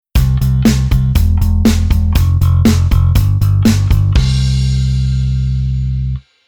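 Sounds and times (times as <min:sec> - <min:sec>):
bass rhythm: 0:00.2 - 0:06.2.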